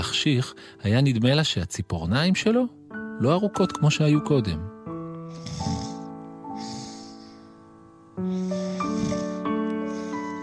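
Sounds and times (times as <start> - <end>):
speech: 0.0 - 4.7
person imitating a tiger's soft raspy snoring: 5.3 - 7.1, 8.3 - 10.4.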